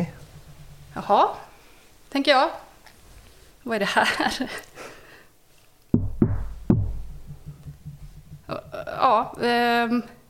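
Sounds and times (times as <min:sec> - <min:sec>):
knocking: 0:00.0 - 0:01.7, 0:06.0 - 0:09.7
speech: 0:01.0 - 0:01.5, 0:02.1 - 0:02.6, 0:03.6 - 0:04.7, 0:09.0 - 0:10.2.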